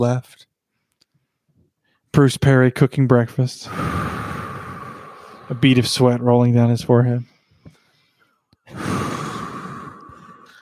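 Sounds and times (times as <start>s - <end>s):
speech: 0.0s - 0.5s, 2.1s - 4.2s, 5.5s - 7.3s, 8.7s - 9.0s
heavy creepy raspy breathing: 3.6s - 10.6s.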